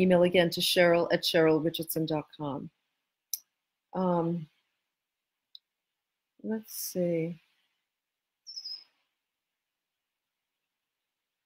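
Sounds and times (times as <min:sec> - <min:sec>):
speech: 0:00.0 - 0:02.8, 0:03.9 - 0:04.5, 0:06.4 - 0:07.4
red-winged blackbird call, thin high whistle outside: 0:08.5 - 0:08.9.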